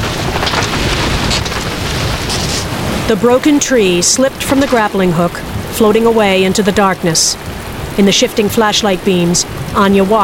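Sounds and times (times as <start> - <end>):
heavy rain in a thunderstorm: 0.0 - 10.2
speech: 3.1 - 10.2.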